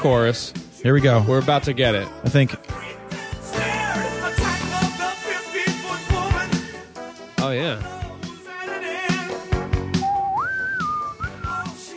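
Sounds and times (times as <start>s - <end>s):
speech: 0.0s - 2.9s
rhythmic song with beat and backing instruments: 0.0s - 11.9s
clear whistled melody: 9.1s - 11.9s.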